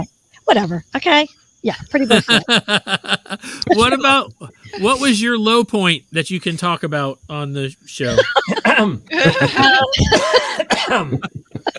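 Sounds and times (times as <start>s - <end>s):
speech: 0.0s - 11.5s
laughter: 2.1s - 11.7s
person coughing from a tickle in the throat: 3.4s - 5.2s, 8.0s - 11.7s.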